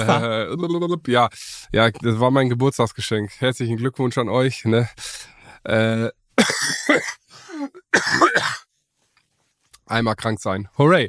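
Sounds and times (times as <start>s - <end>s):
ill person with a persistent raspy cough: 0.0s - 0.4s, 6.4s - 8.6s
person clearing throat: 0.0s - 0.4s, 6.4s - 8.6s
speech: 0.0s - 8.6s, 9.9s - 11.0s.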